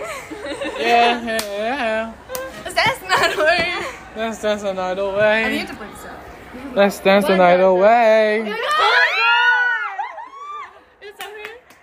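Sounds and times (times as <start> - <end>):
laughter: 0.0 - 4.2
speech: 0.8 - 2.2, 4.2 - 5.9, 6.8 - 9.0
loud high-pitched excited scream: 8.6 - 10.8.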